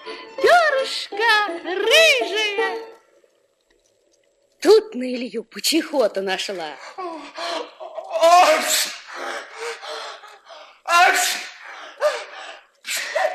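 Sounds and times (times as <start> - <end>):
speech: 0.9 - 2.8, 4.9 - 7.4
voice imitating sneezes: 8.2 - 9.1, 10.9 - 12.3, 12.9 - 13.3.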